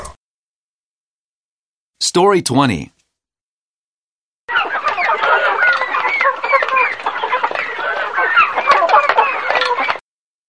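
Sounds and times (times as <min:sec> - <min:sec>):
speech: 0:02.1 - 0:02.9
flock of chickens clucking and squawking: 0:04.5 - 0:10.0.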